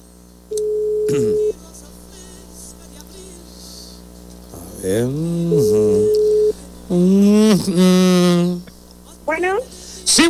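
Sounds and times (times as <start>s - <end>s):
telephone ringing tone: 0.0s - 1.6s, 3.4s - 9.2s
constant hum: 0.0s - 10.2s
speech: 0.5s - 1.3s, 4.9s - 5.6s, 7.6s - 8.0s, 9.3s - 10.2s
laughter: 1.1s - 10.2s.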